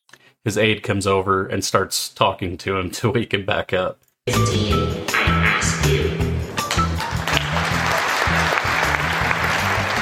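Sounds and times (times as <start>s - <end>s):
speech: 0.4s - 6.2s
large crowd applauding at a conference: 7.0s - 9.9s.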